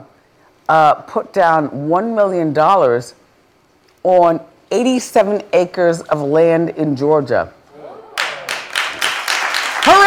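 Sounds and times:
speech: 0.7 - 3.2, 4.0 - 7.6
person clapping: 8.2 - 10.0.

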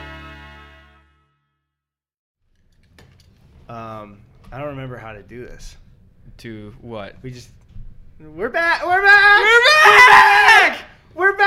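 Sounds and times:
speech: 3.7 - 7.6, 8.2 - 11.4
person screaming excitedly: 8.6 - 11.4.

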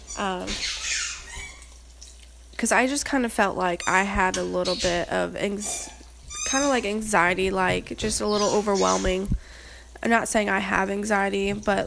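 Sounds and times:
dog squeaky whine: 0.0 - 1.8, 5.7 - 6.8
speech: 0.2 - 0.8, 2.6 - 9.4, 10.0 - 11.8.

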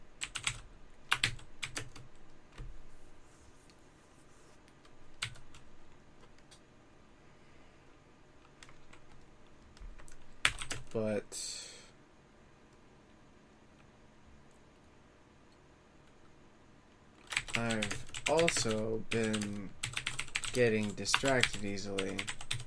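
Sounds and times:
keyboard typing while writing: 0.2 - 2.8, 4.8 - 6.6, 8.4 - 11.0, 17.2 - 22.6
speech: 11.0 - 11.6, 17.6 - 19.8, 20.5 - 22.4.

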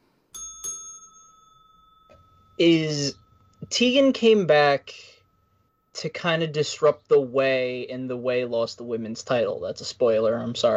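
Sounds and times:
bell struck with a bright metallic tone: 0.3 - 8.9
speech: 2.6 - 5.1, 6.0 - 10.7.

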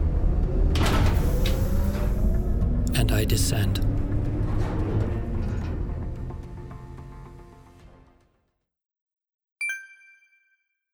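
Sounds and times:
elevator door sliding open: 0.0 - 7.4
speech: 3.0 - 4.0.

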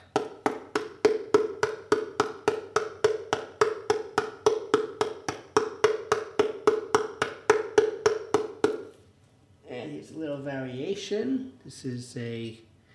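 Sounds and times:
papery taps on a paper towel roll cardboard tube drum covered with washi tape and masking tape: 0.0 - 8.9
speech: 10.2 - 12.7.

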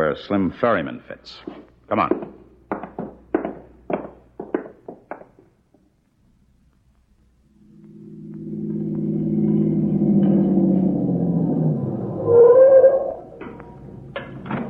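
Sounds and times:
speech: 0.1 - 2.4
car engine rumbling as it approaches up a road: 7.5 - 14.6.

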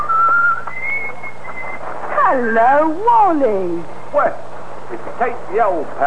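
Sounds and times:
man whistling a bright jaunty tune: 0.0 - 1.8
faint low hum: 0.0 - 6.0
speech: 2.3 - 6.0.

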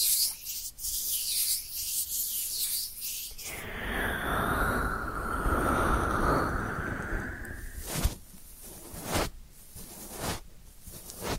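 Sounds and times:
ear cleaning rubbing and scratching: 0.0 - 3.6, 7.3 - 11.3
sharp scrapes: 0.0 - 4.2, 6.2 - 11.3
soft hiss: 0.0 - 11.3.

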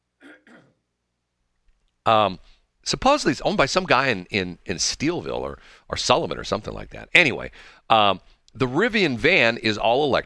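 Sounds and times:
rough throat clearing: 0.2 - 0.8
speech: 2.1 - 10.2.

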